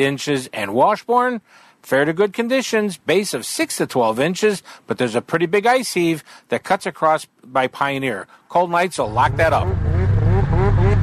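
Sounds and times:
speech: 0.0s - 9.9s
snowmobile engine revving: 9.0s - 11.0s.

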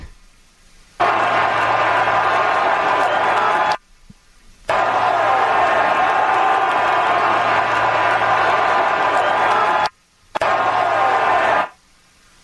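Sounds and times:
stadium crowd roar during a streaker's run: 1.0s - 3.8s, 4.7s - 11.8s.

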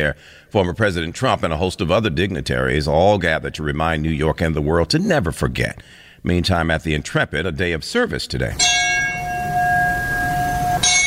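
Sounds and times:
speech: 0.0s - 8.7s
bells tolling at a 9/11 remembrance aboard the Intrepid: 8.6s - 11.0s.

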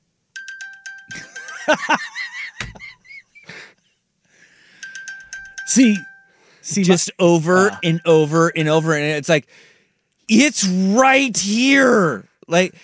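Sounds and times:
laughter: 1.1s - 3.6s, 7.5s - 8.2s
speech: 1.7s - 2.2s, 5.8s - 9.7s, 10.3s - 12.8s
phone-finder locator alert electronic chime: 4.8s - 9.2s
person talking loudly: 5.7s - 6.0s, 6.7s - 9.4s, 10.3s - 12.7s.

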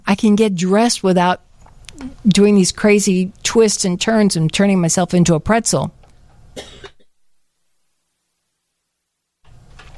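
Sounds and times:
speech: 0.2s - 6.0s
person clearing throat: 6.6s - 7.1s
person coughing: 6.6s - 7.1s.

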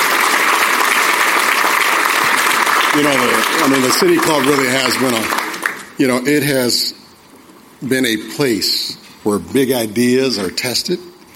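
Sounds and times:
audience applauding at a civic club gathering: 0.0s - 6.0s
speech: 2.9s - 5.4s, 6.0s - 7.0s, 7.8s - 11.1s.

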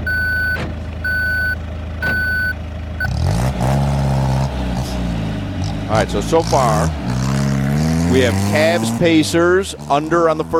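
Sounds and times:
armored truck reversing beeps: 0.0s - 3.2s
armored truck diesel engine rumbling and revving: 0.0s - 10.5s
speech: 5.9s - 7.0s, 8.1s - 10.5s.

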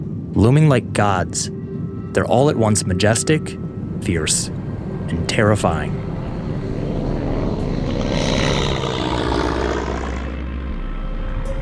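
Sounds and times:
speech: 0.4s - 6.1s
small aircraft landing on a small open runway in the Himalayan mountains: 4.6s - 11.6s.

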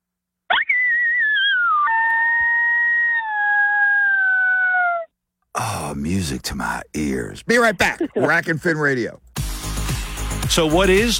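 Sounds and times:
howl blown on a predator call: 0.5s - 5.1s
speech: 6.1s - 9.4s, 10.5s - 11.1s.

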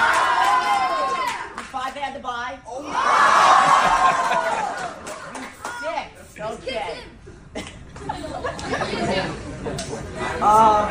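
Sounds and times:
crowd of kids screaming and cheering: 0.0s - 1.6s, 2.8s - 5.9s
laughter: 3.3s - 5.6s, 7.4s - 10.8s.

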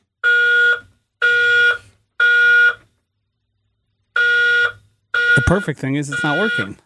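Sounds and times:
loud fire alarm sounding in harsh buzzing beeps: 0.2s - 2.8s, 4.2s - 6.8s
speech: 5.4s - 6.8s.

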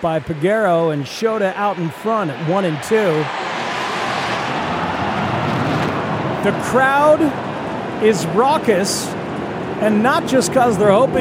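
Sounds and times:
speech: 0.0s - 3.6s, 6.4s - 9.2s, 9.8s - 11.1s
airplane flying overhead during a baseball game at an air and water show: 2.2s - 11.1s.

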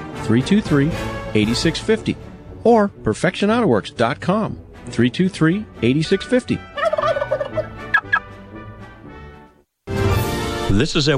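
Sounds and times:
speech: 0.3s - 6.7s, 10.8s - 11.1s
turkeys gobbling: 6.3s - 8.3s.

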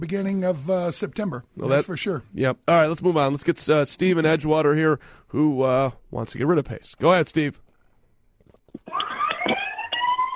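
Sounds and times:
speech: 0.0s - 7.6s
siren wailing over a phone line: 8.9s - 10.3s.

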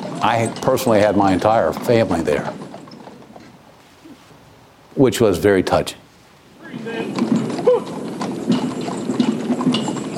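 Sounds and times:
horse hooves clip-clopping on pavement drawing a caisson at a memorial: 0.0s - 4.8s, 6.3s - 10.1s
speech: 0.2s - 2.6s, 5.0s - 6.0s
horse whinny: 6.7s - 10.1s.

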